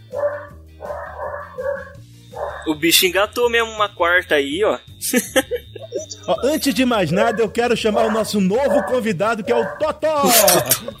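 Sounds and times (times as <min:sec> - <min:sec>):
small dog barking and yapping in high-pitched bursts: 0:00.0 - 0:02.7, 0:07.1 - 0:09.9
speech: 0:02.7 - 0:05.6, 0:06.3 - 0:10.9
laughter: 0:05.0 - 0:10.9.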